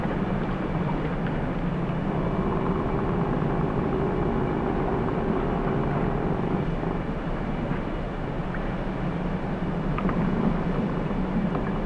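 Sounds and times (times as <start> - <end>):
low underwater rumble of ice in a cove in the Bering Sea: 0.0 - 11.8.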